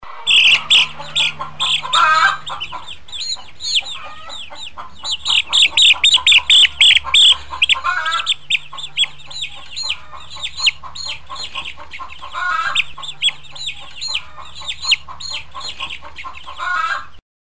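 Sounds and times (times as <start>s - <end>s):
chicks in a chicken coop: 0.0s - 17.2s.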